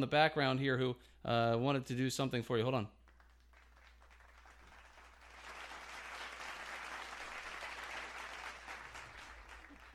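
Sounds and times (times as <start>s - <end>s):
speech: 0.0s - 3.0s
crowd applauding: 3.1s - 9.9s.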